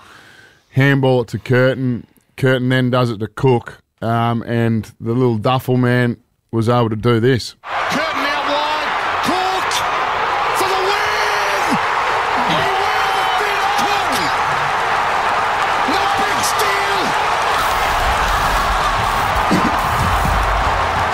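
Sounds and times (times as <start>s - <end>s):
speech: 0.8s - 8.1s
huge stadium crowd roaring after match-winning goal: 7.6s - 21.1s
people shouting and whooping: 7.6s - 21.1s.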